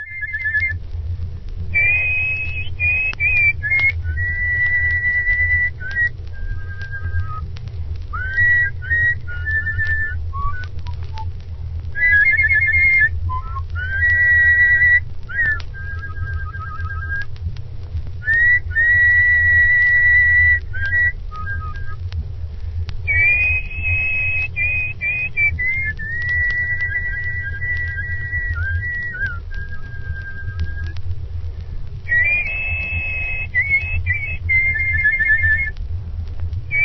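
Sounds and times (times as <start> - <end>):
person whistling a bluesy melody: 0.0 - 0.8, 1.7 - 7.5, 8.1 - 11.3, 11.9 - 17.3, 18.2 - 22.0, 23.0 - 31.0, 32.0 - 35.8, 36.7 - 36.8
low steady rumble: 0.0 - 36.8.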